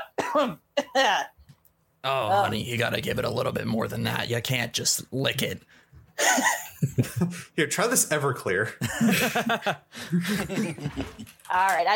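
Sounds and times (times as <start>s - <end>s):
person coughing harshly: 0.0s - 0.9s
speech: 0.4s - 1.4s, 2.0s - 11.9s
laughter: 6.2s - 7.4s, 8.8s - 11.3s.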